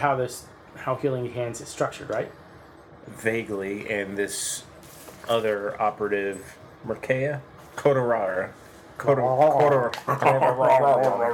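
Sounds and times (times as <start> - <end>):
speech: 0.0 - 2.4, 3.1 - 11.3
person imitating a dog with whiny yelping barks: 9.6 - 11.3.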